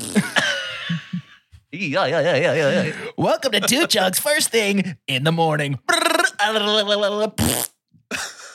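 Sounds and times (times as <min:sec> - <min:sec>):
long buzzy fart and squeaky fart noises: 0:00.0 - 0:00.4, 0:07.4 - 0:07.8
speech: 0:00.1 - 0:00.3, 0:01.8 - 0:08.3.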